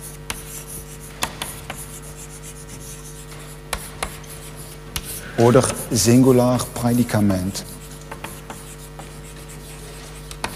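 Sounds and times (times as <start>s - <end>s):
writing on a wall during a lecture: 0.0s - 10.5s
writing implement tapping a wall: 0.3s - 1.9s, 3.3s - 5.8s, 8.0s - 9.4s
speech: 5.4s - 7.7s.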